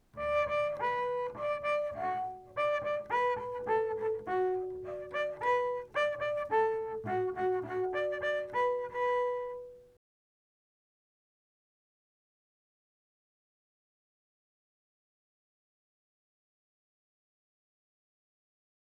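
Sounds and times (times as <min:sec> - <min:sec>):
quick bowed harmonics: 0:00.2 - 0:09.6.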